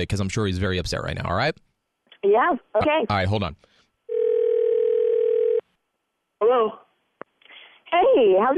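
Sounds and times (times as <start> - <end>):
speech: 0.0 - 3.7, 6.4 - 6.8, 7.9 - 8.5
telephone dial tone as call is placed: 4.1 - 5.6.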